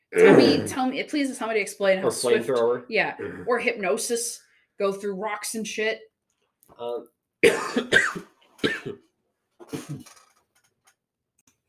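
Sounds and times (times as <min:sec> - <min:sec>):
speech: 0:00.1 - 0:06.1, 0:06.7 - 0:09.0, 0:09.7 - 0:10.2
person clearing throat from phlegm: 0:00.2 - 0:00.8, 0:07.4 - 0:09.0, 0:09.6 - 0:10.1.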